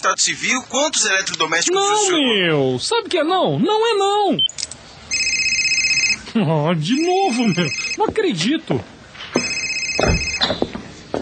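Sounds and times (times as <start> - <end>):
speech: 0.0 - 4.8, 6.4 - 8.9, 10.0 - 11.2
telephone ringing with electronic trill: 5.1 - 6.2, 6.9 - 8.0, 9.4 - 10.6
laughter: 7.2 - 8.0
dull thumps: 9.4 - 11.2.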